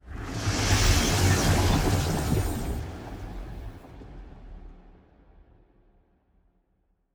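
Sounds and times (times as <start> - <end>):
ship moving: 0.4 - 3.9.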